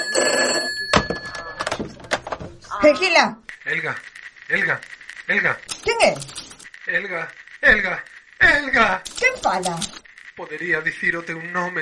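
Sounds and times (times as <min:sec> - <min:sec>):
telephone ringing with an incoming call: 0:00.0 - 0:11.8
speech: 0:02.8 - 0:11.8.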